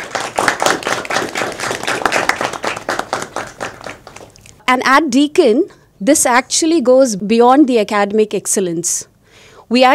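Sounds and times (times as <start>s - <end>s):
audience of finalists clapping: 0.0s - 4.5s
speech: 4.7s - 9.1s, 9.7s - 9.9s.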